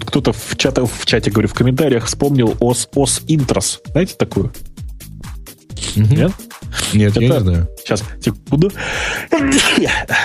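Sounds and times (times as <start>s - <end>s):
speech: 0.1s - 4.8s, 5.8s - 10.2s
person sneezing: 9.3s - 10.1s.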